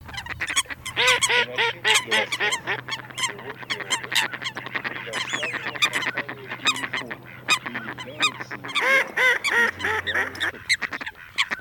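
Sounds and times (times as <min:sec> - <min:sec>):
Eurasian coot calling: 0:00.0 - 0:11.5.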